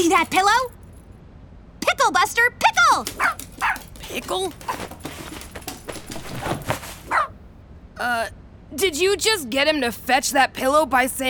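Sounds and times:
speech: 0.0 - 0.8, 2.0 - 5.0, 8.0 - 11.2
rustling and shuffling movement of a dog: 2.9 - 7.5
dog barking while fetching a pillow: 3.1 - 3.9, 7.0 - 7.4.

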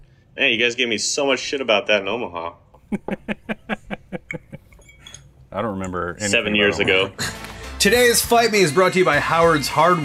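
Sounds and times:
speech: 0.4 - 3.7, 5.5 - 10.0
laughter: 2.9 - 4.7
glasses clinking in a toast: 4.3 - 6.9.

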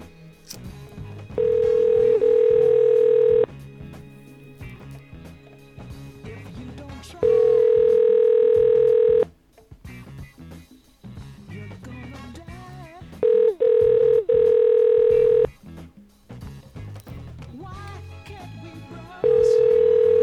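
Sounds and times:
ringback tone of an outgoing phone call: 1.3 - 3.5, 7.2 - 9.3, 13.2 - 15.5, 19.2 - 20.2.

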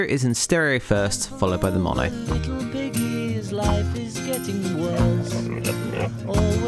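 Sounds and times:
speech: 0.0 - 6.6
pig-like grunts and oinks as sound effects in a song: 4.7 - 6.6.

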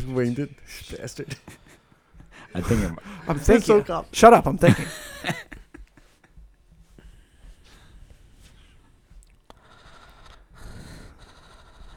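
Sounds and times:
speech: 0.1 - 1.6, 2.5 - 5.4
laughter: 1.2 - 6.3
heavy breathing against the microphone: 1.6 - 3.7, 6.9 - 11.9.

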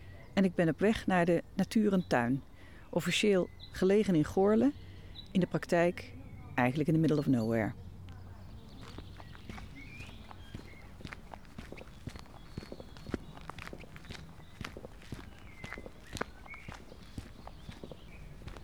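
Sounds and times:
speech: 0.4 - 7.8
footsteps crunching on an old forest path in early May: 8.3 - 18.6
thin bird calls: 8.3 - 18.6.

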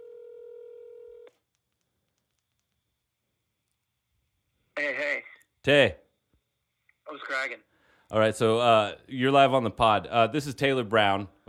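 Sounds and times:
steady electronic telephone tone on speakerphone: 0.0 - 1.3
speech: 4.8 - 6.0, 7.2 - 11.4.

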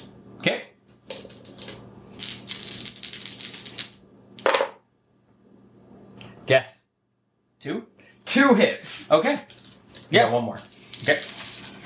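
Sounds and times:
speech: 0.4 - 0.7, 6.5 - 6.7, 7.6 - 9.5, 10.1 - 11.4
five dice rolled during a tabletop role-playing game: 1.1 - 4.7, 9.4 - 11.8.

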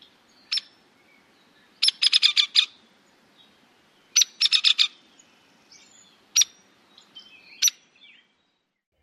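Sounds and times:
Hairy Woodpecker calls: 0.0 - 0.8, 1.8 - 2.8, 4.1 - 5.0, 5.8 - 8.2.

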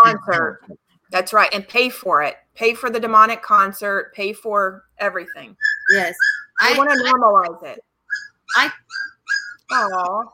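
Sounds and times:
speech: 0.1 - 7.9, 8.5 - 10.3
puppy whimpering: 5.6 - 7.3, 8.1 - 10.3.

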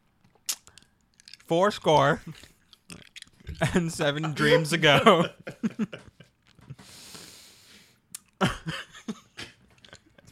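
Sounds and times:
person chewing candy with clicks and smacking: 0.0 - 3.8, 8.0 - 8.4
speech: 1.5 - 2.5, 3.6 - 6.0
laughter: 3.7 - 6.8.

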